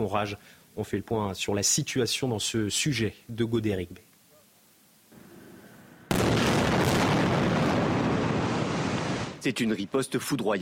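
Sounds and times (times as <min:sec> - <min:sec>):
speech: 0:00.0 - 0:04.1, 0:09.4 - 0:10.6
rocket strike explosion on buildings: 0:06.1 - 0:09.4.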